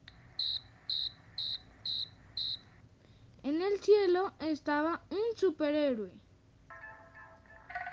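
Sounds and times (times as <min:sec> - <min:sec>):
cricket chirping at night: 0:00.4 - 0:02.7
speech: 0:03.5 - 0:06.3.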